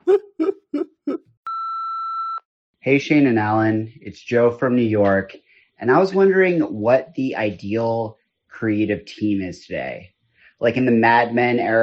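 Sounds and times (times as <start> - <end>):
voicemail message beep: 1.5 - 2.4
speech: 2.8 - 11.8.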